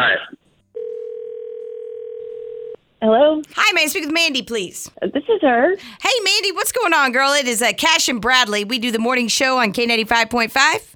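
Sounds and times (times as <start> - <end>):
steady telephone dial tone: 0.8 - 2.8
speech: 3.0 - 10.9.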